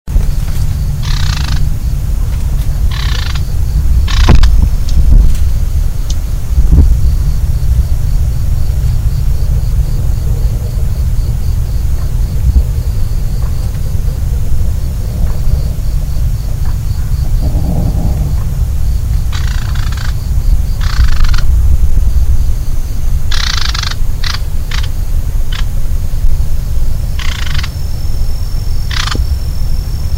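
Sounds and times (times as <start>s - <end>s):
Manchurian bush warbler Cettia canturians call: 0.2s - 30.1s.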